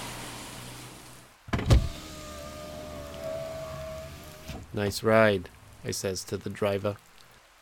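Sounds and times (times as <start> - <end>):
power window electric motor whine: 0.0 - 4.6
coupe power window rolling down: 0.0 - 4.7
speech: 4.7 - 7.1.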